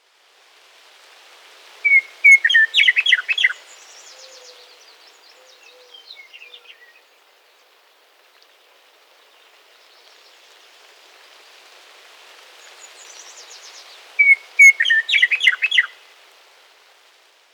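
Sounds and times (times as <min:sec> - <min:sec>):
Western Meadowlark Sturnella neglecta singing: 0:01.9 - 0:04.6, 0:14.2 - 0:15.9.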